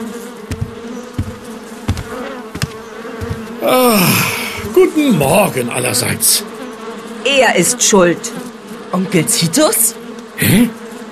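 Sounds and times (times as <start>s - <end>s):
many houseflies buzzing: 0.0s - 11.1s
sharp knocks or taps: 0.5s - 4.8s
speech: 3.6s - 6.6s, 7.2s - 10.8s.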